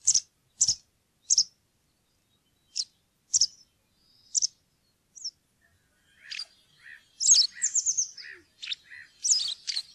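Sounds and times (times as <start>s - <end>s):
white wagtail singing sharp chirps and twittering: 0.0s - 1.5s, 2.7s - 4.6s, 6.0s - 9.9s.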